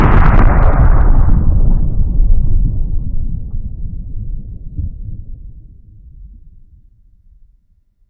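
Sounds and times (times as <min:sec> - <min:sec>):
huge distant explosion: 0:00.0 - 0:06.4.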